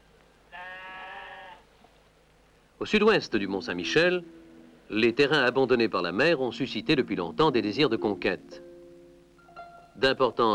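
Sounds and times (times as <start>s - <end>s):
faint hiss: 0.0s - 10.5s
salt-meadow sheep bleating: 0.5s - 1.7s
speech: 2.8s - 8.7s, 10.0s - 10.5s.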